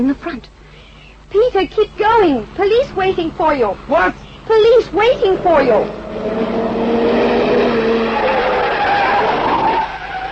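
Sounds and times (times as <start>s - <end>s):
speech: 0.0s - 0.6s, 1.3s - 7.0s
car engine approaching: 1.2s - 10.3s
car tires squealing and skidding: 5.2s - 10.3s.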